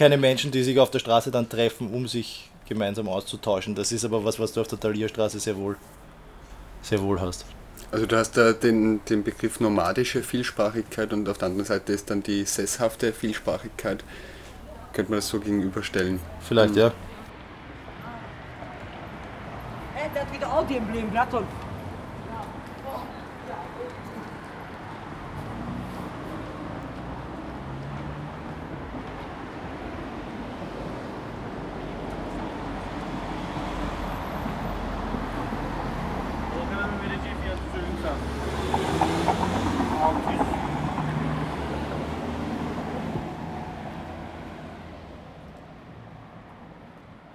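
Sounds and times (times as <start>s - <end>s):
speech: 0.0s - 6.1s, 6.8s - 17.1s, 20.2s - 21.7s
steady roar of city street traffic with passing vehicles: 0.0s - 47.3s
indistinct voices on a city street: 6.7s - 17.3s.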